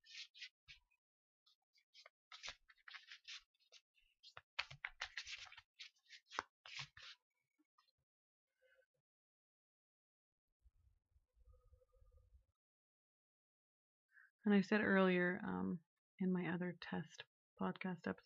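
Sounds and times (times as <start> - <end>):
deck of cards being shuffled: 0.0 - 0.8, 1.8 - 7.2
speech: 14.4 - 18.2.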